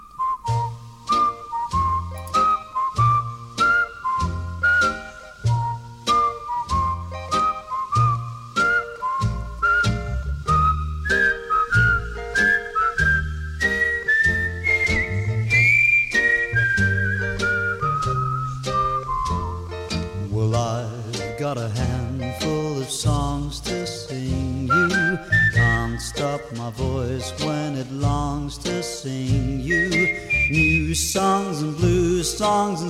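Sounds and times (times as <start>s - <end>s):
whistled melody in a 1950s pop song: 0.0s - 32.8s
bouncy band accompaniment in a 1950s pop song: 0.4s - 32.8s.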